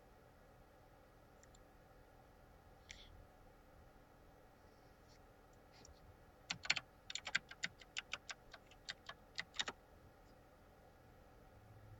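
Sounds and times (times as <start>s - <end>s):
typing on a computer keyboard: 6.5s - 9.8s.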